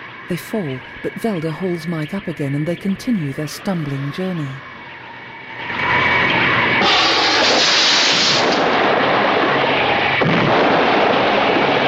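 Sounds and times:
speech: 0:00.3 - 0:04.7
beach house exploding in flames: 0:06.5 - 0:11.8.

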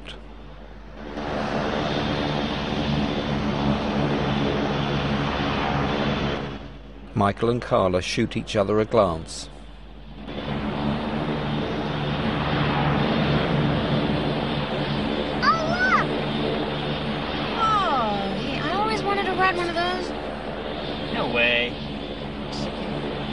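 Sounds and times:
airplane engine drone inside the cabin of a plane: 0:00.0 - 0:23.3
speech: 0:07.2 - 0:09.5
short voices: 0:15.4 - 0:16.1.

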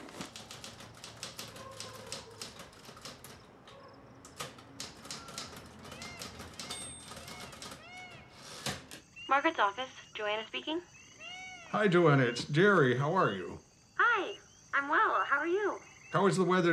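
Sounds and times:
typewriter key strikes at night in an apartment: 0:00.1 - 0:09.0
typewriter chimes and ringing tones: 0:04.5 - 0:08.2
speech: 0:09.3 - 0:11.0, 0:11.7 - 0:16.7.

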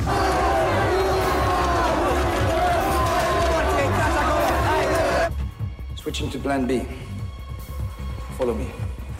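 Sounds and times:
dense loud crowd roaring and shouting: 0:00.0 - 0:05.3
speech: 0:06.2 - 0:07.1, 0:08.4 - 0:09.0.

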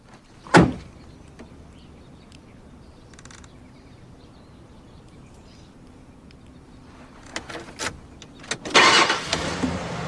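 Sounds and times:
4x4 door thudding shut: 0:00.5 - 0:00.9
4x4 engine starting and revving: 0:07.7 - 0:10.0
4x4 pulling away: 0:08.5 - 0:10.0.

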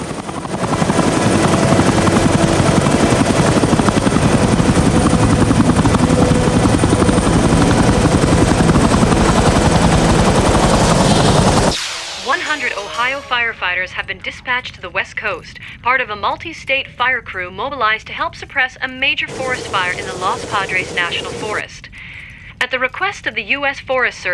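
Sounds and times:
helicopter rotor chopping while arriving and landing: 0:00.0 - 0:14.2, 0:19.3 - 0:21.7
speech: 0:13.9 - 0:24.3.

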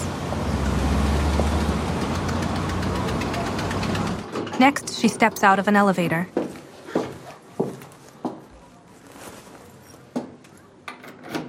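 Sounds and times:
taxi car engine pulling away on a street: 0:00.0 - 0:04.3
speech: 0:04.6 - 0:06.4.

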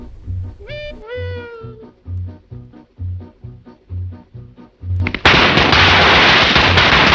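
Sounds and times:
low rhythmic thumping: 0:00.0 - 0:05.8
brief meow-like wail: 0:00.6 - 0:01.9
long strip of firecrackers lit from a cigarette exploding: 0:05.0 - 0:07.1.

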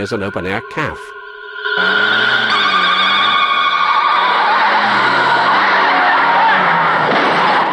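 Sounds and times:
speech: 0:00.0 - 0:02.8
car tires screeching while swerving down a dark street: 0:01.8 - 0:07.7.

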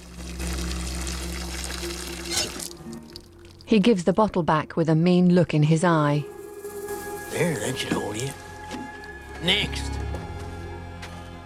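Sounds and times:
water pouring from a tap onto ground in the desert: 0:00.0 - 0:03.8
low hum: 0:00.0 - 0:09.1
speech: 0:03.7 - 0:06.3, 0:07.4 - 0:08.3, 0:09.4 - 0:10.0.

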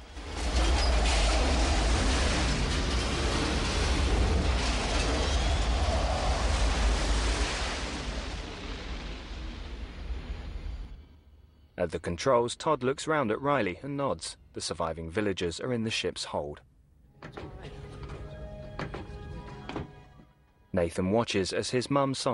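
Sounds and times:
massive rolling explosion: 0:00.0 - 0:11.2
speech: 0:11.8 - 0:17.6, 0:20.8 - 0:22.3.

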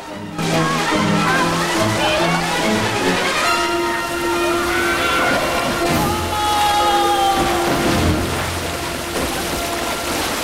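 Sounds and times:
water splashing and sloshing in a pool in a vast cavern: 0:00.0 - 0:10.4
people shouting and crying out excitedly: 0:00.4 - 0:08.4.

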